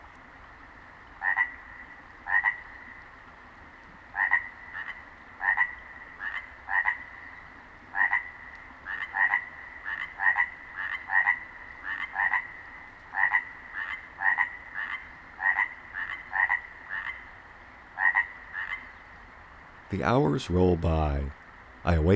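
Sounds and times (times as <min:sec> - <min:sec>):
chorus frogs calling at night: 0:01.2 - 0:03.1, 0:04.1 - 0:19.1
speech: 0:19.9 - 0:22.1.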